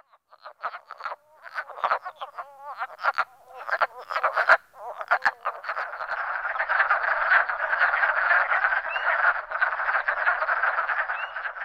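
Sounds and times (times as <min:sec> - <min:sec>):
chorus of wood frogs croaking at a vernal pool: 0:00.0 - 0:11.6.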